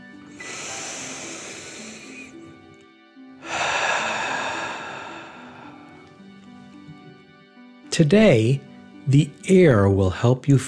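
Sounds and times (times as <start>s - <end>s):
soft musical tone: 0.0s - 10.6s
deep breath in and out during a calming relaxation exercise: 0.3s - 2.4s, 3.4s - 6.2s
speech: 8.0s - 10.6s.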